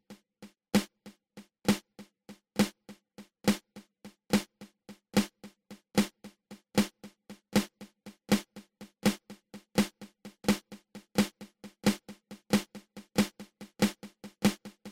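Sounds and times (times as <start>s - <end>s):
flam accent open close open: 0.7s - 1.1s, 1.7s - 3.7s, 4.3s - 14.9s.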